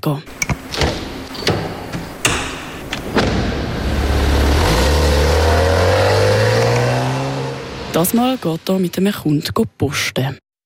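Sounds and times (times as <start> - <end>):
speech: 0.0 - 0.9, 7.9 - 10.4
car trunk and doors slamming shut: 0.3 - 3.8
car engine starting and revving as the car pulls away: 0.3 - 8.2.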